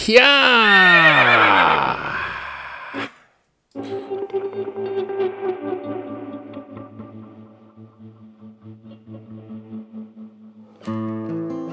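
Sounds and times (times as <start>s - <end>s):
speech: 0.0s - 1.0s
horse whinnying: 0.0s - 3.2s.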